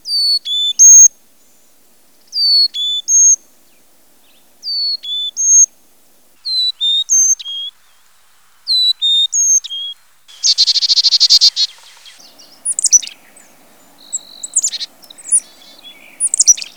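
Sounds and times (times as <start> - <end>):
chickadee calling: 0.0 - 1.1, 2.2 - 16.7.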